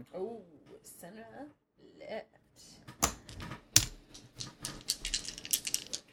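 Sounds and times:
speech: 0.0s - 3.5s
dice rolling and clacking: 3.0s - 6.1s.

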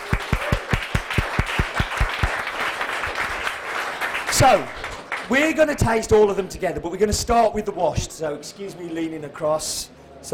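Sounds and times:
one clapper's sharp steady claps: 0.0s - 5.3s
small audience applauding: 0.0s - 5.3s
speech: 4.4s - 10.3s.

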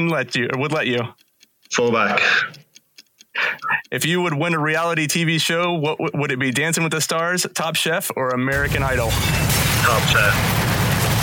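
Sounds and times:
speech: 0.0s - 2.6s, 3.4s - 10.7s
explosion sound effect with deep sustained rumbling roar: 8.6s - 11.2s.

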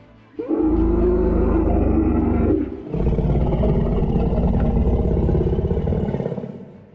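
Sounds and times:
large fierce beast roaring: 0.4s - 6.9s.

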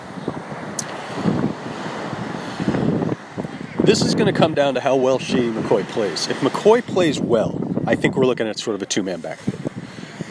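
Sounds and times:
gusty wind rumble across the microphone: 0.0s - 10.3s
ocean surf with waves washing in and breaking on shore: 0.0s - 10.3s
speech: 3.9s - 9.5s.

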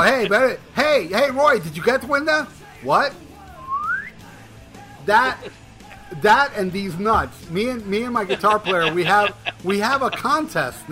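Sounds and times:
laughter: 0.0s - 0.4s, 5.2s - 5.6s, 8.0s - 10.5s
speech: 0.0s - 3.2s, 5.0s - 10.9s
sharp two-finger whistle sliding upward in pitch: 3.6s - 4.2s.

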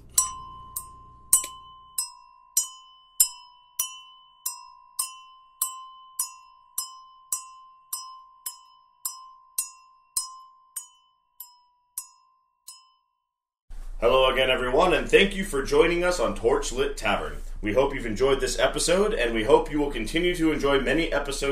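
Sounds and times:
small bell ringing: 0.0s - 13.2s
speech: 14.0s - 21.5s.

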